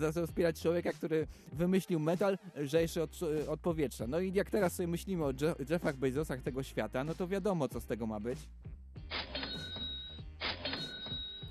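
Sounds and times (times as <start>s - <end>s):
speech: 0.0s - 8.7s
cash register ka-ching with drawer clatter and ringing bell: 9.1s - 11.4s.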